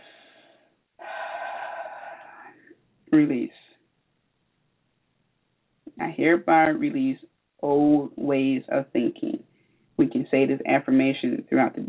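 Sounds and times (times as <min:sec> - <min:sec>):
deep breath inhaled during a spiritual affirmation exercise: 0:00.0 - 0:02.7
speech: 0:03.1 - 0:03.6, 0:06.0 - 0:11.8.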